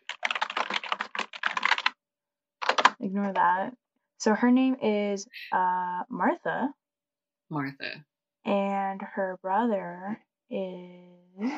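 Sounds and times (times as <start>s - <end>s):
typing on a computer keyboard while searching on Google: 0.0s - 1.9s, 2.6s - 3.0s
speech: 3.0s - 6.8s, 7.5s - 11.5s.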